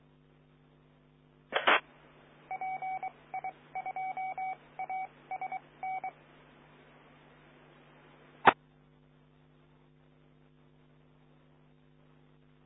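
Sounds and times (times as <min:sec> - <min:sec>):
steady low hum: 0:00.0 - 0:12.6
sharp click: 0:01.6 - 0:01.8
telephone keypad dialing tones: 0:02.5 - 0:06.1.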